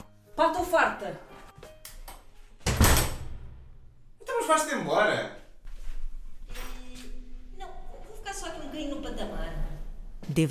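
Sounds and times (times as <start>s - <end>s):
speech: 0.4s - 1.3s, 4.4s - 5.4s, 10.3s - 10.5s
door slamming shut: 2.6s - 3.7s.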